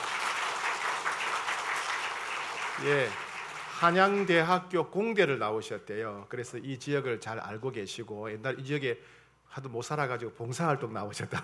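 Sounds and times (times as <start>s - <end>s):
church crowd clapping to welcome a new choir conductor: 0.0s - 4.6s
speech: 2.8s - 3.2s, 3.8s - 11.4s.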